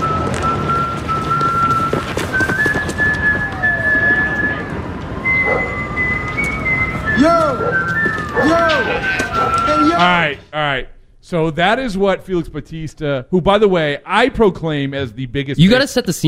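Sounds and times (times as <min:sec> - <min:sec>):
whistled melody of a walk-up song: 0:00.0 - 0:10.0
speech: 0:10.5 - 0:16.2.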